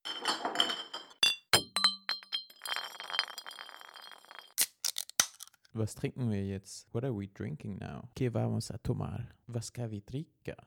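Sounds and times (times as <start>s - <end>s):
drinking glasses clinking together: 0.0s - 4.5s
sharp glass taps: 0.1s - 4.3s
people talking: 5.8s - 10.6s.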